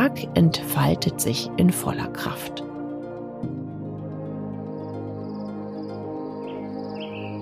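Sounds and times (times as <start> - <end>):
speech: 0.1 - 2.7
crickets chirring in dawn jungle: 4.6 - 7.4.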